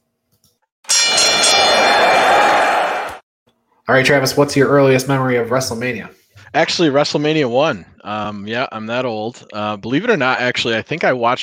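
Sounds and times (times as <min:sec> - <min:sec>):
bell ringing with a sharp metallic clang: 0:00.9 - 0:02.8
speech: 0:03.9 - 0:11.4.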